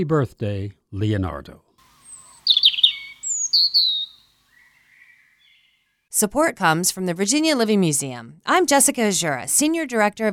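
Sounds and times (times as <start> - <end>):
speech: 0.0 - 1.6, 6.2 - 10.3
birds chirping and singing: 1.9 - 5.8.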